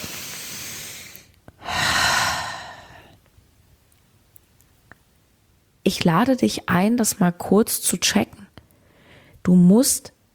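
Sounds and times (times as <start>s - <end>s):
deep breathing: 0.0s - 3.2s
speech: 5.9s - 8.4s, 9.5s - 10.2s.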